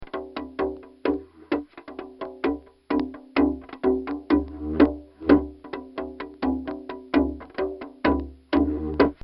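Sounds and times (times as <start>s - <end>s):
Dumbecki drum: 0.0s - 9.2s.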